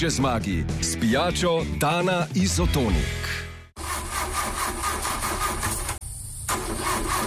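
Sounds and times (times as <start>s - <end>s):
speech: 0.0s - 3.5s
car engine cranking without catching: 3.8s - 7.2s.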